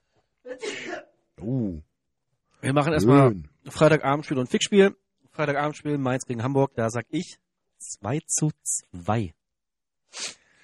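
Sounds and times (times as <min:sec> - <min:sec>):
person sneezing: 0:00.5 - 0:01.2, 0:10.1 - 0:10.4
speech: 0:01.4 - 0:01.9, 0:02.6 - 0:09.4, 0:10.1 - 0:10.4.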